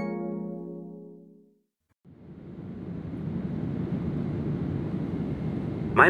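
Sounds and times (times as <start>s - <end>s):
airplane cabin engine noise on an Air France flight: 2.1s - 6.0s.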